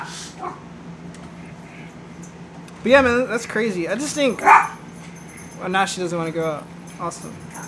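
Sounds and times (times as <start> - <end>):
dog barking: 0.0 - 0.7, 4.4 - 4.8
steady low hum: 0.0 - 7.6
speech: 2.8 - 4.8, 5.6 - 7.5.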